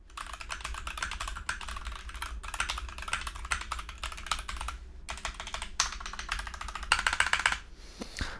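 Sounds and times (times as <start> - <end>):
keyboard typing on a large desk mat: 0.1 - 7.6.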